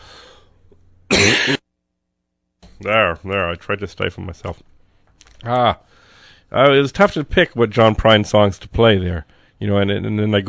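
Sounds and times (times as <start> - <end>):
quiet breathing: 0.0 - 0.8, 5.8 - 6.6, 9.2 - 9.6
low room noise: 0.0 - 10.4
person coughing: 1.1 - 1.6
speech: 2.8 - 4.7, 5.4 - 5.9, 6.5 - 10.4.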